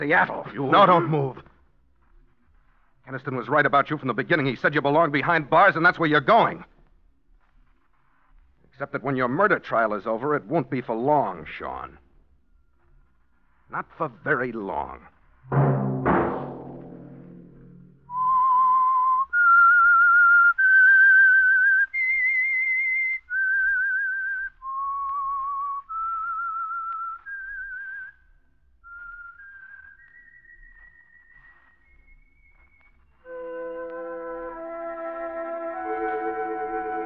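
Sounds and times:
speech: 0.0s - 1.4s, 3.1s - 6.7s, 8.8s - 12.0s, 13.7s - 15.8s
lone whistler whistling a slow eerie melody: 18.1s - 28.2s, 28.8s - 37.0s.

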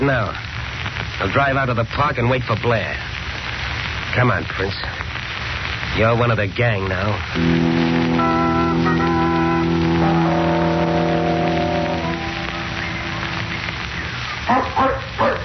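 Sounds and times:
rain-like hiss: 0.0s - 15.4s
speech: 0.1s - 3.2s, 4.1s - 5.0s, 6.0s - 7.7s
sustained droning tones: 7.4s - 14.4s
dog running around barking: 14.5s - 15.4s.

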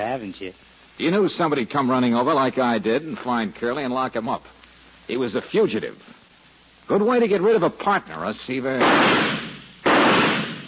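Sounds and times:
speech: 0.0s - 6.2s, 6.9s - 9.4s
shotgun gunshots at clay pigeons: 8.8s - 10.6s.

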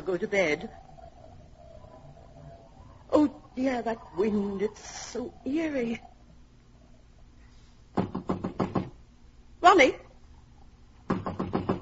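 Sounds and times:
speech: 0.0s - 0.9s, 3.1s - 6.1s, 9.7s - 10.0s
knocking on a locked door: 8.0s - 9.0s, 11.1s - 11.8s.

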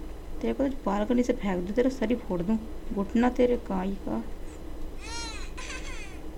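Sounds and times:
steady low hum: 0.0s - 6.3s
speech: 0.4s - 4.4s
baby crying in a video game: 5.0s - 6.2s.

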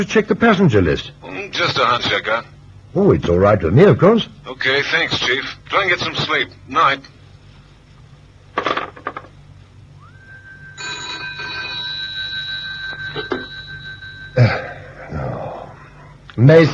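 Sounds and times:
speech: 0.0s - 7.2s, 14.4s - 14.6s, 16.4s - 16.7s
telephone ringing: 10.7s - 14.9s.

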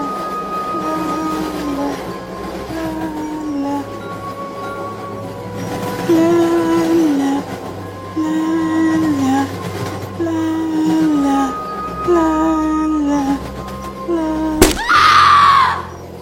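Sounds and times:
faint humming-like tones: 0.0s - 16.1s
steady rumble of a moving train: 0.0s - 16.1s
young woman screaming as she falls into a train: 14.6s - 15.9s.

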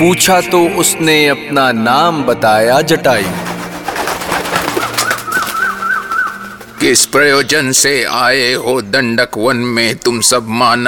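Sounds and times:
speech: 0.0s - 3.4s, 6.8s - 10.8s
bird chirping: 3.4s - 7.1s.

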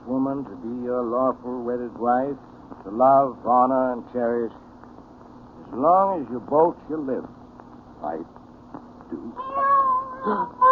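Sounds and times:
speech: 0.3s - 4.6s, 5.7s - 7.4s, 8.0s - 8.4s, 9.1s - 10.7s
cat meowing: 9.4s - 10.7s.

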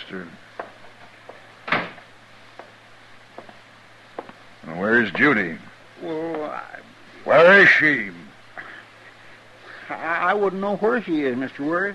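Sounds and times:
low steady hum: 0.0s - 11.9s
speech: 0.1s - 0.4s, 4.8s - 8.2s, 9.9s - 11.9s
faint clicks and knocks: 0.6s - 4.4s
door shutting with a solid thud: 1.6s - 2.1s.

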